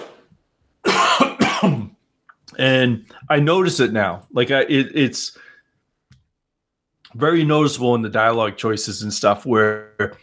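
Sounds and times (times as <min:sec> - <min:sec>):
person clearing throat with rough raspy coughs: 0:00.8 - 0:02.0
speech: 0:01.6 - 0:05.4, 0:07.1 - 0:10.2.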